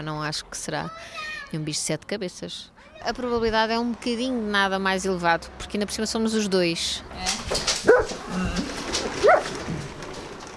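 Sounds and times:
speech: 0.0 - 7.7, 8.3 - 9.4
dog yelping barks: 7.8 - 8.3, 9.2 - 9.6.

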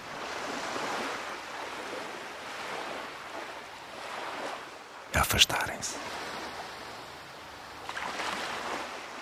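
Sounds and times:
ocean waves washing onto a beach: 0.0 - 9.2
speech: 5.2 - 6.3.

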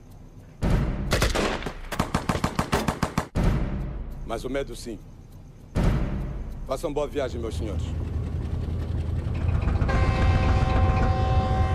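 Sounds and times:
rumbling background: 0.0 - 11.7
rapid bursts of gunfire: 0.6 - 4.0
speech: 4.3 - 5.1, 6.7 - 8.1.

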